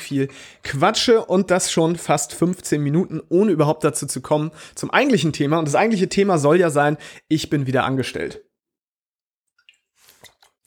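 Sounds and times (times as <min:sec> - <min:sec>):
speech: 0:00.1 - 0:08.5
person taking a sip of water: 0:09.7 - 0:10.6
swallow: 0:09.7 - 0:10.6.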